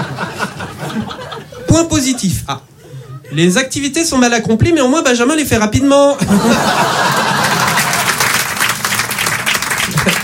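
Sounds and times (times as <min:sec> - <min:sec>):
people laughing: 0:00.0 - 0:01.7, 0:06.2 - 0:08.4, 0:09.8 - 0:10.2
speech: 0:02.0 - 0:02.7, 0:03.3 - 0:07.2
audience applause: 0:06.8 - 0:10.2.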